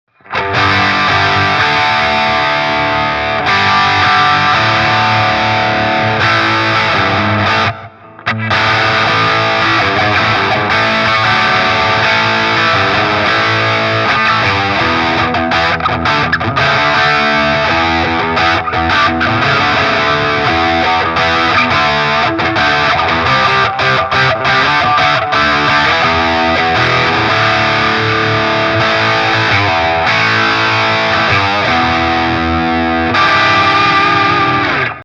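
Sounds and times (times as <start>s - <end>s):
guitar through a Bogner Ecstasy Mini amp head with high gain: 0.1s - 35.0s.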